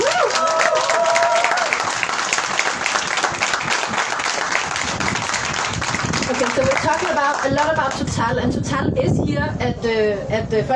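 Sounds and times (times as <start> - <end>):
crowd applause at the Folkemøde: 0.0 - 8.1
speech: 7.6 - 10.7.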